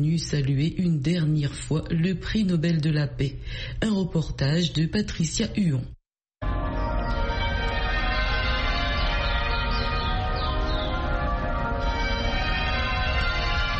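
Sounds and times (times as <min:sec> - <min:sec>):
speech: 0:00.0 - 0:06.0
cathedral church bells pealing: 0:06.4 - 0:13.7.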